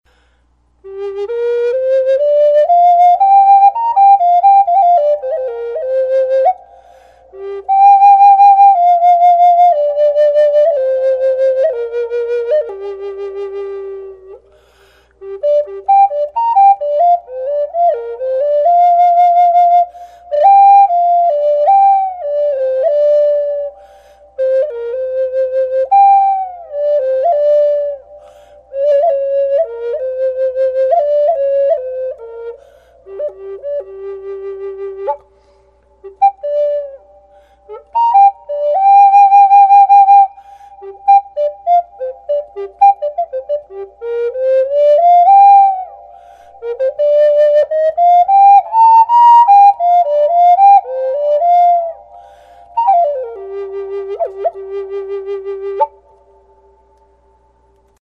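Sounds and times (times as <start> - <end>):
western red cedar flute: 0.1 - 57.9.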